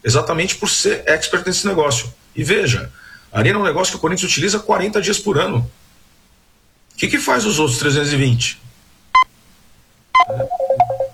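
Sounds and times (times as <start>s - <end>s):
speech: 0.0s - 5.8s, 7.0s - 8.7s, 10.2s - 10.6s
telephone ringing for an incoming call: 10.2s - 11.1s.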